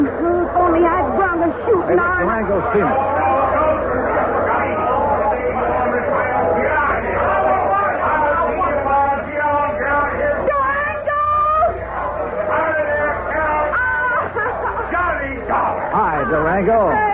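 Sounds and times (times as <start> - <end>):
dense crowd murmuring and chattering: 0.0 - 17.1
speech: 1.9 - 3.3
laughter: 12.5 - 17.1.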